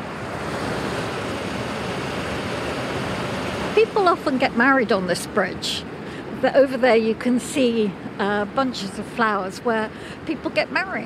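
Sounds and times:
waterfall roaring: 0.0s - 5.8s
speech: 3.8s - 11.0s.

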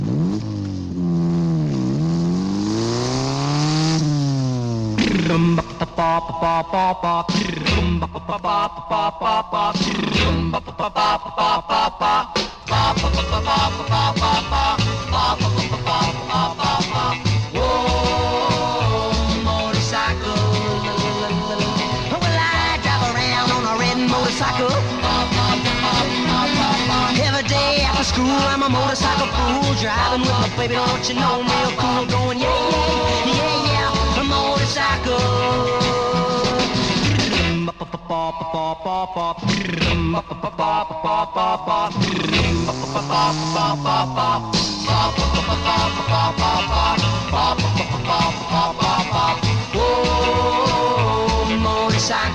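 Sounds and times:
engine-like revving: 0.0s - 6.0s, 12.7s - 37.6s, 41.8s - 52.3s
early 1960s rock and roll song: 5.0s - 52.3s.

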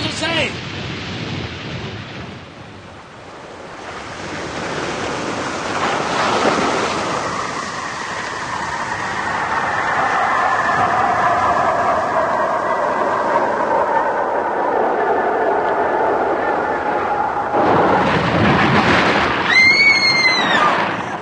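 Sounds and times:
spacecraft splashing down into the ocean: 0.0s - 13.6s, 17.5s - 21.1s
churning surf off a beach: 0.0s - 21.1s
spacecraft rushing roar: 3.7s - 21.1s
high sustained whine: 6.7s - 18.1s.

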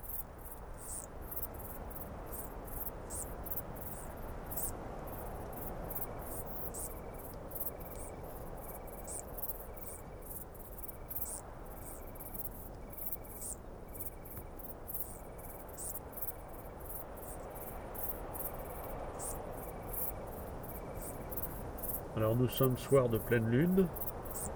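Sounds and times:
wingless bush-crickets stridulating under a Scots pine in the Rhône valley: 0.0s - 24.5s
speech: 22.2s - 24.0s.

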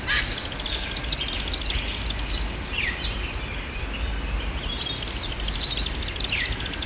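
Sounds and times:
variegated fairy wrens trilling: 0.0s - 3.2s, 4.9s - 6.8s
busy chorus of other birds: 0.0s - 6.8s.

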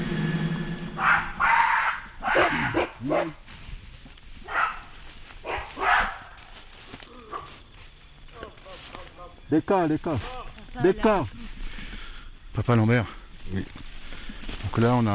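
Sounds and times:
gorilla calling in the forest with hoarse barking hoots: 0.0s - 3.4s
low steady forest noise: 0.0s - 15.1s
speech: 9.5s - 11.4s, 12.6s - 13.8s, 14.8s - 15.1s.

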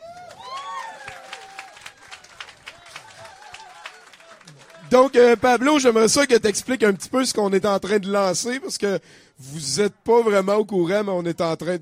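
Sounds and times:
cheering voices in small audience: 0.0s - 8.4s
small audience clapping: 0.0s - 8.4s
speech: 4.9s - 11.8s.

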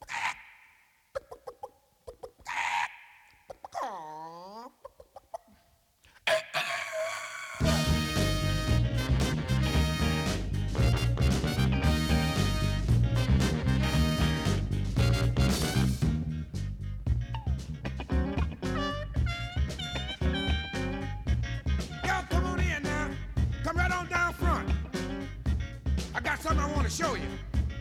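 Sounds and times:
squawky chicken-like clucks: 0.0s - 5.6s
loud driving funk song with full band: 7.6s - 27.7s.

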